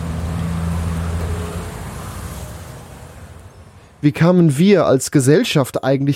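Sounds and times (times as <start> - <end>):
low car engine rumble passing: 0.0 - 4.0
steady street traffic: 0.0 - 6.1
speech: 4.0 - 6.1.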